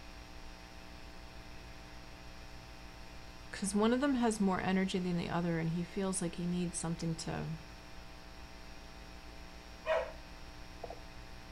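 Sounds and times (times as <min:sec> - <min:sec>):
speech: 0:03.6 - 0:07.7
dog barking to be let out: 0:09.8 - 0:10.2.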